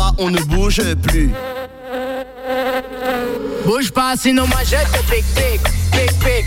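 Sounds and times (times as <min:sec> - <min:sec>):
speech: 0:00.2 - 0:01.6, 0:03.7 - 0:06.4
wasp buzzing: 0:01.3 - 0:03.8.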